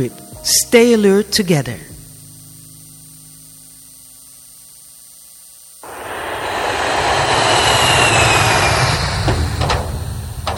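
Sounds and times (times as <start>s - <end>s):
speech: 0.0s - 1.9s
airplane engine roaring as the plane flies away: 5.8s - 10.5s.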